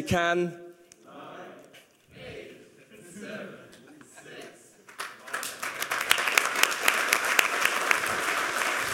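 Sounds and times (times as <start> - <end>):
audience applause: 4.9 - 8.9.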